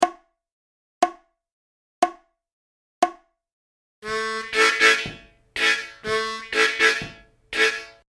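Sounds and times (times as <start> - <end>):
harmonica playing a twelve-bar country style blues lick: 4.0 - 8.0.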